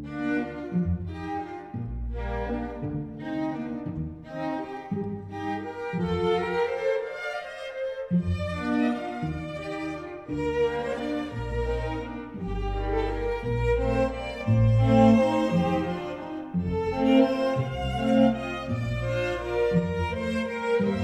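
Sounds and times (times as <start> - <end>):
strings playing: 0.2 - 21.0.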